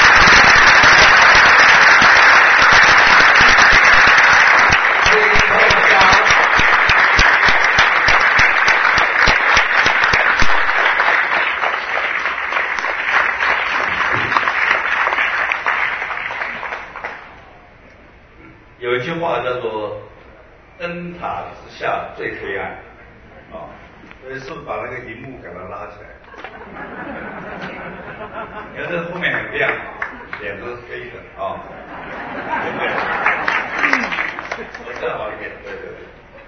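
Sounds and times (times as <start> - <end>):
large audience applause welcoming a guest: 0.0 - 17.4, 29.3 - 30.5, 32.2 - 35.5
laughter: 5.1 - 6.6, 26.3 - 30.4, 31.7 - 35.0
speech: 20.9 - 22.9, 24.2 - 27.2, 28.2 - 36.2.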